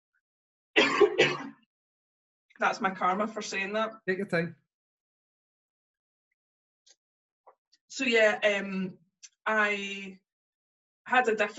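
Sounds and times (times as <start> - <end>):
dry coughs: 0.8 - 1.6
speech: 2.6 - 4.6, 8.0 - 10.2, 11.1 - 11.5.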